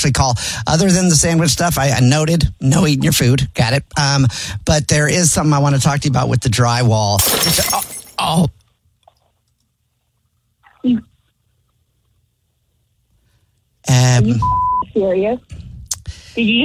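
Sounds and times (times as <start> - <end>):
speech: 0.0 - 8.6, 10.8 - 11.1, 13.9 - 15.6, 16.4 - 16.6
dropped glass shattering: 7.2 - 8.4
short electronic beep: 14.4 - 14.9.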